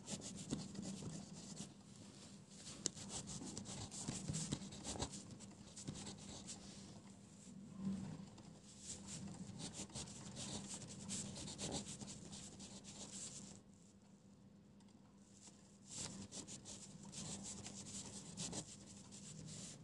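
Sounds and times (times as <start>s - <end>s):
pencil scratching and scribbling on paper: 0.0s - 1.7s, 2.8s - 6.6s, 9.0s - 13.5s, 15.9s - 19.8s
faint low hum: 0.0s - 19.8s.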